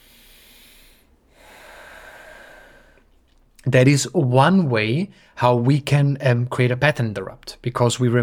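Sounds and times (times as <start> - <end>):
deep breath as a posture-and-breathing reset: 0.0 - 3.4, 5.1 - 5.4
speech: 3.7 - 8.2.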